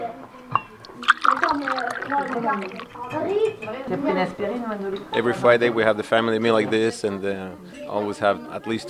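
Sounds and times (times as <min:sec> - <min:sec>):
wine pouring into a glass: 0:00.8 - 0:03.2
speech: 0:01.6 - 0:08.8.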